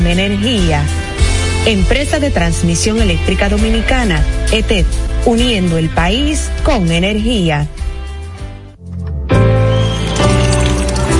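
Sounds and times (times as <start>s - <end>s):
music playing: 0.0s - 11.1s
speech: 0.1s - 1.0s, 1.6s - 7.8s
drinking water pouring from a tap: 9.8s - 11.1s.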